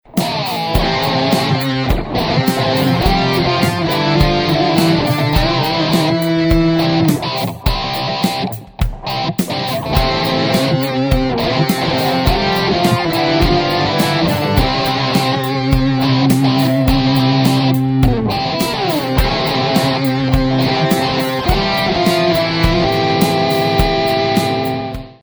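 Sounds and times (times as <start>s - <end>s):
octave effect from a BOSS GT-6 guitar processor: 0.1s - 25.2s.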